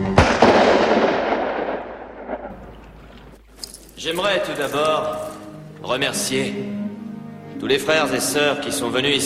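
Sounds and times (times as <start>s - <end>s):
gunshots: 0.2s - 3.0s
speech: 4.0s - 6.8s, 7.6s - 9.2s.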